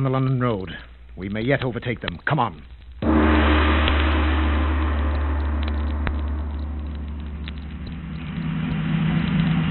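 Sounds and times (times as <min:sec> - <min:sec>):
speech: 0:00.0 - 0:02.8
car engine running with deep rumble: 0:03.0 - 0:09.7.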